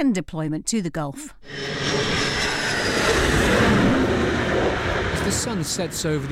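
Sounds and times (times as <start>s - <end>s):
speech: 0.0s - 2.2s, 5.2s - 6.3s
navy jet engine roaring on return to an aircraft carrier: 1.4s - 6.3s.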